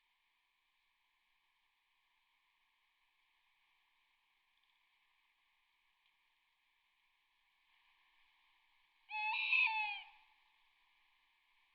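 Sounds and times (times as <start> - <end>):
tawny owl hooting: 9.1 - 10.3.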